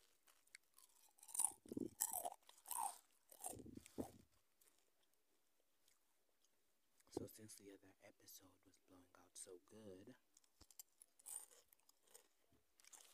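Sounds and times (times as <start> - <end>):
chewing crunchy crisps: 0.0 - 5.2, 10.3 - 13.1
speech: 7.2 - 10.3.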